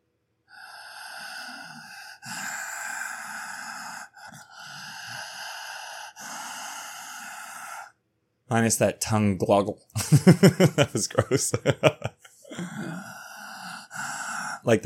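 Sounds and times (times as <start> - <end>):
slow throaty breathing with airflow restricted at the throat: 0.5 - 8.0, 12.3 - 14.8
speech: 8.5 - 12.2, 14.6 - 14.8
laughter: 10.0 - 12.4.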